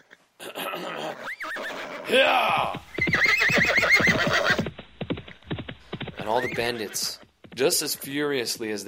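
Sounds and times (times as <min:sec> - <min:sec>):
person imitating a harsh horse neigh: 0:00.0 - 0:04.6
speech: 0:02.1 - 0:02.8, 0:06.3 - 0:08.8.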